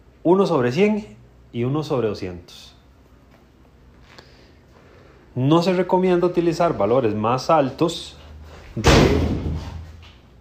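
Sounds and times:
speech: 0.2 - 2.8, 5.4 - 8.2, 8.8 - 9.4
door slamming shut: 8.8 - 9.9.

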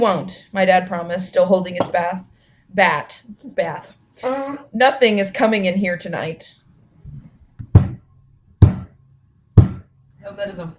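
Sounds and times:
speech: 0.0 - 7.2, 10.2 - 10.7
heavy booming knocking thuds on a surface: 7.6 - 8.0.

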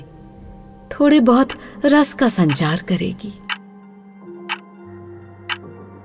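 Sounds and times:
speech: 1.0 - 3.5
clock ticking: 2.4 - 3.6.

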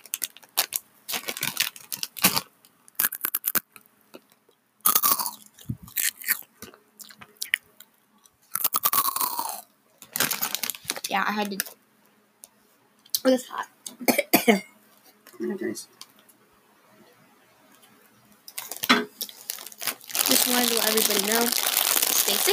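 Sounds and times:
crunching and chewing hot Cheetos: 0.0 - 11.7, 18.5 - 22.5
speech: 11.2 - 11.8, 13.2 - 14.7, 15.4 - 16.0, 20.5 - 21.7, 22.3 - 22.5.

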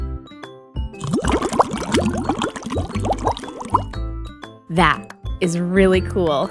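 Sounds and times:
air blown through a straw into water bubbling: 1.0 - 3.9
speech: 4.7 - 6.4.

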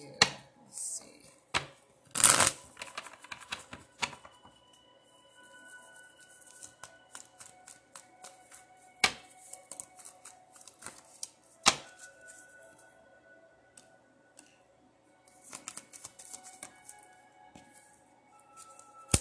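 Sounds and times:
tarot card drawn from a deck: 1.6 - 4.5, 5.8 - 12.9, 15.3 - 19.1.

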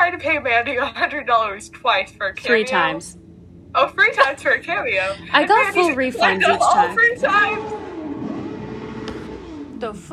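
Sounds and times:
speech: 0.1 - 7.9, 9.8 - 10.1
laughter: 4.0 - 7.6
loud car roaring past: 7.1 - 9.8.

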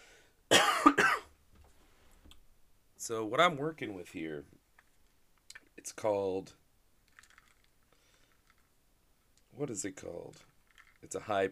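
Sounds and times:
loud harsh cough: 0.5 - 1.3
speech: 3.1 - 4.6, 5.8 - 6.6, 9.6 - 11.5.

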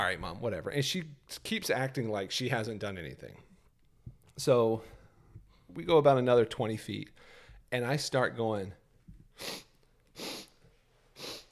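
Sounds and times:
speech: 0.0 - 3.5, 4.4 - 5.0, 5.7 - 8.8, 9.4 - 9.6
person sniffing hard through the nose for a smell of smoke: 9.3 - 11.5.

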